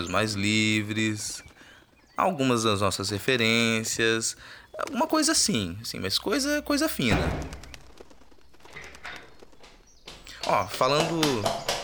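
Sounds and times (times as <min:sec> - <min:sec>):
speech: 0:00.0 - 0:01.5, 0:02.2 - 0:07.6, 0:10.5 - 0:11.7
pigeon in a room with clattering wing flaps: 0:06.4 - 0:11.8.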